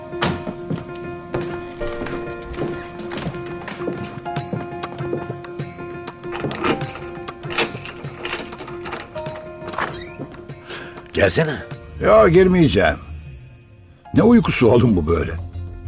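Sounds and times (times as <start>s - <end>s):
hard footsteps across a floor: 0.0s - 6.2s
speech: 11.2s - 13.0s, 14.1s - 15.5s.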